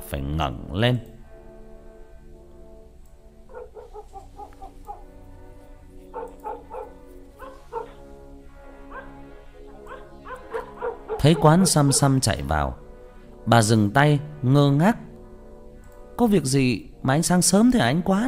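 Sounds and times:
speech: 0.1s - 1.2s, 11.2s - 12.8s, 13.4s - 15.0s, 16.2s - 18.2s
black dog barking: 3.5s - 5.1s, 6.1s - 8.0s, 8.9s - 9.2s, 9.8s - 12.2s.

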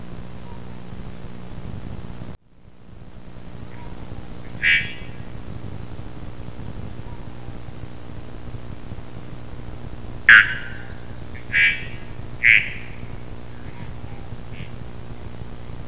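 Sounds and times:
low background hiss: 0.0s - 15.8s
adult male three-wattled bellbird Procnias tricarunculata song at forest edge: 3.7s - 5.6s, 10.3s - 14.8s.

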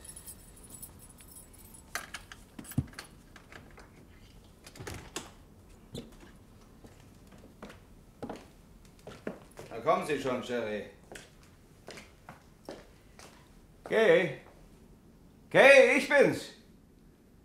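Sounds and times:
keys jangling while searching for a key: 0.0s - 3.1s
speech: 9.9s - 11.0s, 13.9s - 14.4s, 15.5s - 16.6s.

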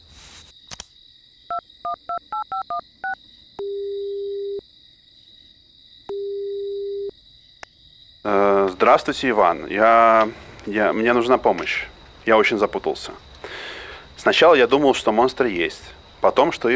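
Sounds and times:
telephone ringing tones: 1.5s - 4.6s, 6.1s - 7.1s
speech: 1.6s - 4.0s, 8.2s - 13.3s, 14.2s - 16.7s
telephone touch-tone dialing beeps: 1.9s - 4.6s.

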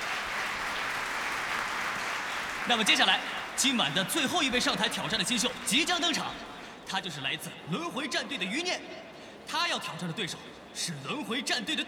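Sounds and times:
audience applause at a live esports-style competition event: 0.0s - 6.7s
speech: 2.6s - 11.8s.

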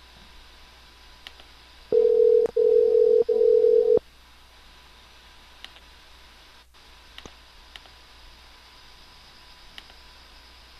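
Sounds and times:
telephone line tones while calling someone back: 1.9s - 4.0s.

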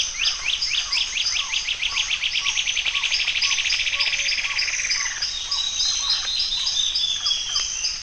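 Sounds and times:
bird song with slurred notes and rolling trill: 0.0s - 8.0s.

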